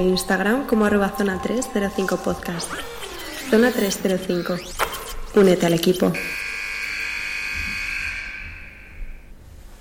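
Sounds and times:
speech: 0.0s - 6.4s
bagpipes playing a buzzing drone with a held high melody note: 6.2s - 9.1s.

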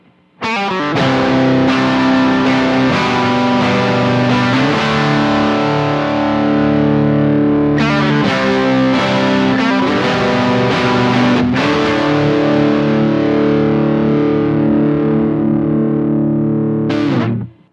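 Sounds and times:
heavily distorted electric guitar power chords through a tube amp, doubled track: 0.0s - 17.7s.

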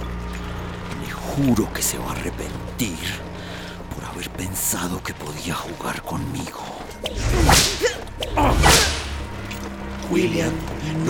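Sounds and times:
speech: 1.3s - 3.3s, 4.1s - 8.8s, 10.1s - 11.0s
whip lashes striking a person in punishment: 7.0s - 9.3s.

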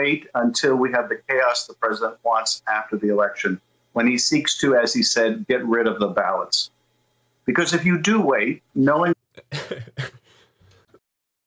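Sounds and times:
speech: 0.0s - 6.8s, 7.5s - 10.2s
person coughing with a rough throaty rasp: 9.4s - 10.3s
person laughing: 9.4s - 10.4s.

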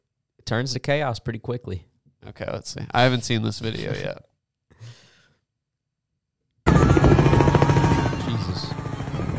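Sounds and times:
speech: 0.5s - 5.0s
short soft breath: 4.7s - 5.4s
helicopter flying overhead with rotor chopping and droning engine whine: 6.7s - 9.3s.

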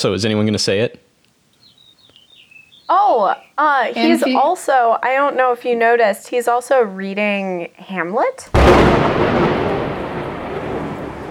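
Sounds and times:
speech: 0.0s - 1.0s, 2.9s - 9.7s
rolling thunder rumble: 8.5s - 11.2s.

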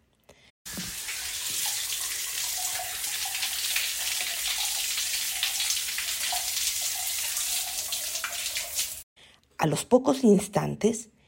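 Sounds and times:
water poured over corridor floor tiles: 0.7s - 9.0s
speech: 9.6s - 11.2s.

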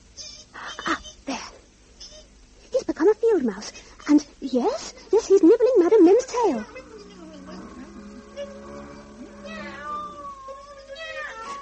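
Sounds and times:
speech: 3.4s - 6.8s
angry cat yowling and growling: 6.3s - 11.6s.

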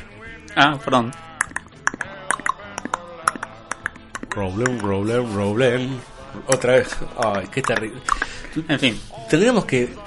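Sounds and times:
speech: 0.5s - 1.3s, 4.4s - 10.0s
voice imitating a horse's clip-clop with tongue clicks: 0.8s - 5.0s, 6.5s - 8.4s.

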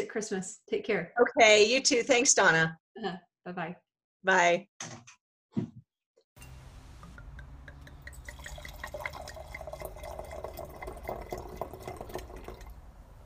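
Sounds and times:
speech: 0.0s - 5.8s
wine cork popping: 6.4s - 13.2s
wine pouring from a bottle: 6.4s - 13.2s.

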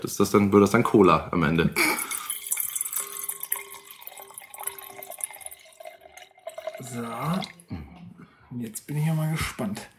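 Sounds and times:
speech: 0.0s - 2.1s
wine pouring into a glass that is not a wine glass: 1.8s - 7.7s.

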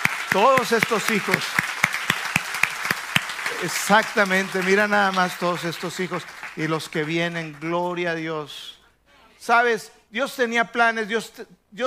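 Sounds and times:
steady rhythmic clapping: 0.0s - 8.0s
speech: 0.3s - 1.6s, 3.6s - 8.8s, 9.4s - 11.8s.

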